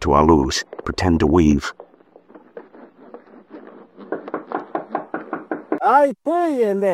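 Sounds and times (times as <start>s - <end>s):
speech: 0.0s - 1.8s, 5.9s - 6.9s
wooden knocks on a door: 4.0s - 5.9s.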